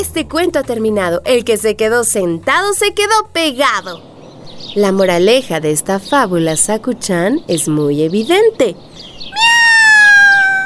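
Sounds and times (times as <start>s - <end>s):
speech: 0.0s - 4.1s, 4.7s - 9.5s
cat meowing: 9.3s - 10.6s
brief quiet trill-like sound: 9.4s - 10.6s.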